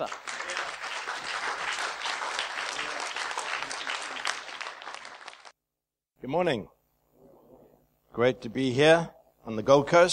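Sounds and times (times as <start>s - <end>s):
church audience applauding: 0.0s - 5.6s
speech: 6.3s - 6.8s, 8.2s - 10.1s.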